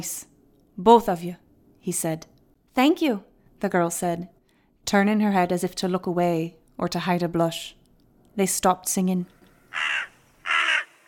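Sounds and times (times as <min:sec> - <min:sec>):
speech: 0:00.0 - 0:07.8, 0:08.4 - 0:10.1
harsh raspy crow caws: 0:09.7 - 0:11.0.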